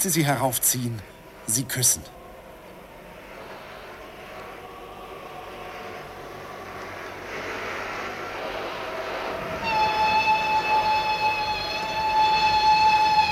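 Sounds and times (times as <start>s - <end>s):
speech: 0.0s - 2.2s
low rumble of a train: 0.0s - 13.3s
locomotive whistle blast: 8.6s - 13.3s.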